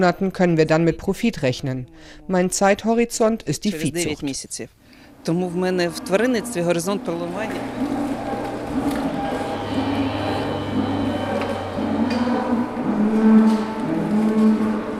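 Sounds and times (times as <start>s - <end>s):
speech: 0.0s - 7.8s
cows mooing in a free-stall barn on a livestock farm: 5.5s - 14.9s.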